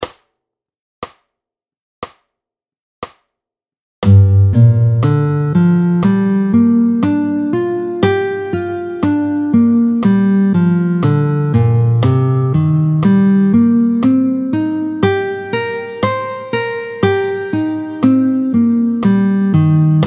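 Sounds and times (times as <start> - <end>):
minor seventh arpeggios played with a pick: 4.1 - 20.0.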